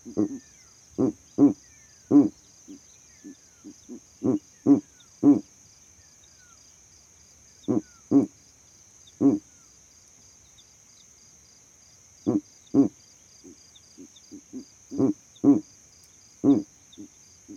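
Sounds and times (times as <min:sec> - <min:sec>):
owl hooting at night: 0:00.0 - 0:05.5, 0:07.6 - 0:08.4, 0:09.1 - 0:09.6, 0:12.2 - 0:15.7, 0:16.4 - 0:17.5
faint high-pitched whine: 0:00.0 - 0:17.5
speech: 0:00.1 - 0:01.6.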